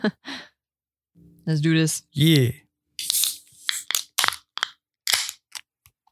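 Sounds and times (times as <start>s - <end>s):
speech: 0.0s - 0.3s, 1.5s - 2.6s
beverage can being cracked open: 3.0s - 5.6s.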